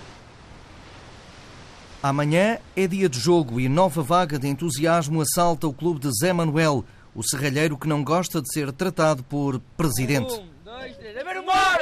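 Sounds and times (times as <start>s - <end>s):
sea waves breaking in front of a football pitch in Póvoa de Varzim: 0.0s - 8.2s
speech: 2.0s - 11.6s.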